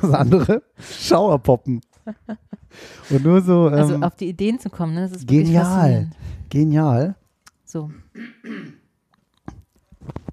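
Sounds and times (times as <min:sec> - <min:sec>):
laughter: 0:00.0 - 0:00.8
speech: 0:00.0 - 0:08.8
person clearing throat: 0:08.0 - 0:08.9.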